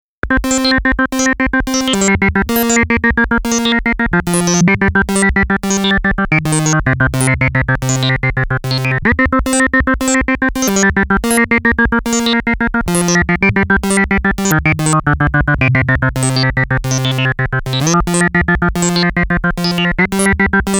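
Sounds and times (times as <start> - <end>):
synthesizer bubbling tones, dry signal: 0.2 - 20.7.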